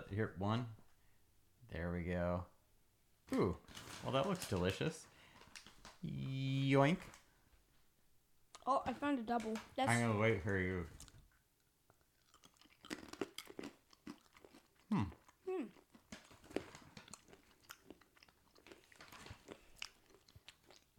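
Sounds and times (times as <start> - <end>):
speech: 0.1 - 0.8, 1.7 - 2.5, 3.3 - 5.1, 6.0 - 7.2, 8.7 - 11.0, 14.9 - 15.8
crunchy chewing of seaweed-flavored almonds: 11.9 - 20.9.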